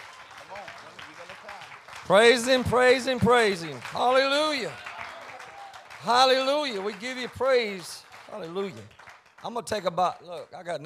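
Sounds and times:
audience clapping: 0.0s - 10.8s
speech: 2.1s - 4.9s, 6.0s - 10.8s.

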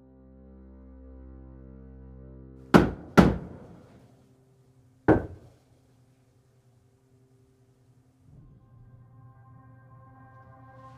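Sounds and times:
faint low hum: 2.7s - 10.9s
knocking on a wooden door: 2.8s - 3.9s, 5.1s - 5.5s.

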